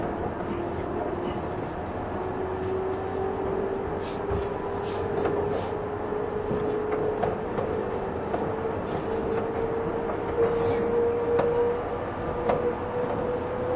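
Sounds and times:
185 series train running noise inside a carriage: 0:00.0 - 0:13.7
faint higher squeal: 0:10.4 - 0:11.7.

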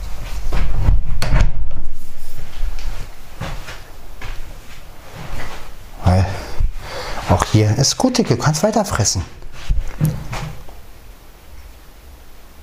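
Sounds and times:
house front door opening and closing: 0:00.6 - 0:01.8, 0:09.9 - 0:10.7
speech: 0:07.6 - 0:09.4.

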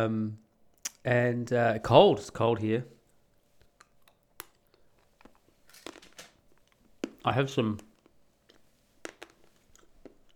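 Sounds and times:
speech: 0:00.0 - 0:00.4, 0:01.0 - 0:03.0, 0:07.2 - 0:07.9
chewing dark chocolate: 0:03.1 - 0:10.3.

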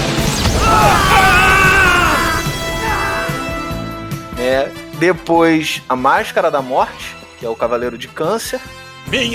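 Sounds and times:
sustained explosion effect with roaring rumble: 0:00.2 - 0:03.8
speech: 0:05.0 - 0:09.3.

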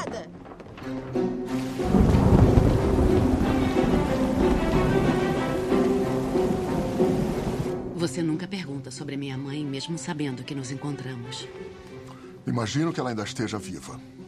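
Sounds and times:
speech: 0:00.8 - 0:01.2, 0:08.1 - 0:14.2
heavy rain pouring: 0:01.5 - 0:07.9
deep rumble: 0:01.7 - 0:07.7.

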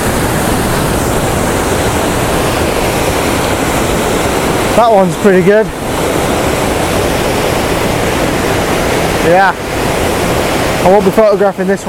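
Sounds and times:
small waterfall pouring: 0:00.0 - 0:11.8
speech: 0:04.8 - 0:05.8, 0:09.3 - 0:10.0, 0:10.8 - 0:11.8.

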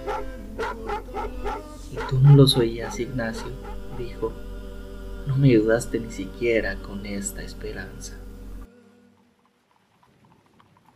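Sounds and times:
dogs barking: 0:00.0 - 0:04.3
low rumble of noise: 0:00.0 - 0:08.7
speech: 0:02.1 - 0:04.5, 0:05.2 - 0:08.2.

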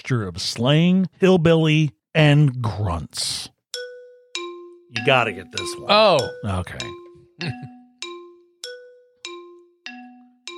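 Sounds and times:
speech: 0:00.1 - 0:03.6, 0:04.9 - 0:07.8
small bell struck to buzz in: 0:03.8 - 0:10.5.

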